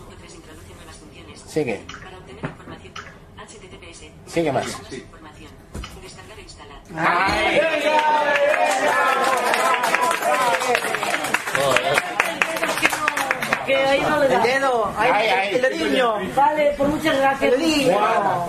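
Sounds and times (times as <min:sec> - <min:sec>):
speech: 0:01.5 - 0:02.0, 0:04.4 - 0:05.2, 0:06.9 - 0:12.0, 0:13.7 - 0:18.4
crowd cheering: 0:07.0 - 0:13.8
audience applause: 0:07.4 - 0:13.7.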